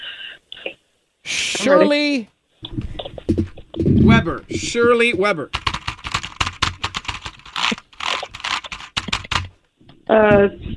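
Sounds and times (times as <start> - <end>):
speech: 1.6 - 2.8, 3.4 - 5.6, 10.1 - 10.7
typing on a computer keyboard: 5.5 - 9.5.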